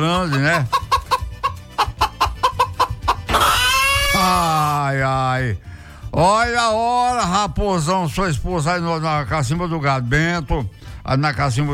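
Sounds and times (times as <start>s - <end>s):
speech: 0.0s - 0.8s, 4.2s - 11.7s
chicken clucking and squawking: 0.0s - 4.2s.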